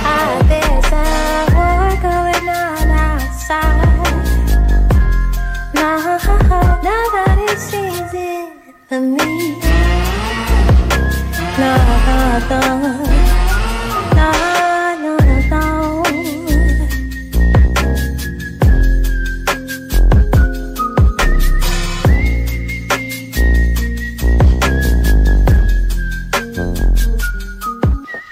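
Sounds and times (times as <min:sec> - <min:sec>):
music track with a steady punchy beat: 0:00.0 - 0:08.0, 0:09.2 - 0:28.1
person whistling a cheerful melody: 0:00.0 - 0:08.4, 0:09.1 - 0:28.2.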